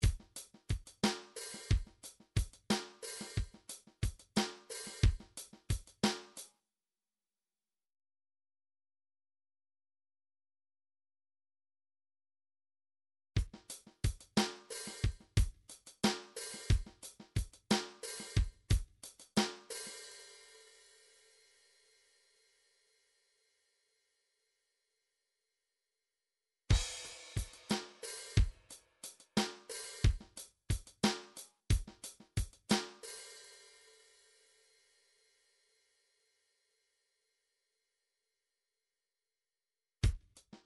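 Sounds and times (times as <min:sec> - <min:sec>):
midi drums: 0:00.0 - 0:06.4, 0:13.4 - 0:20.0, 0:26.7 - 0:33.2, 0:40.0 - 0:40.6.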